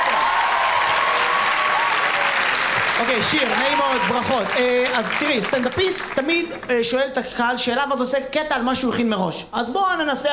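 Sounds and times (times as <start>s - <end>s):
audience applause at a stand-up comedy show: 0.0s - 6.7s
speech: 3.0s - 10.3s.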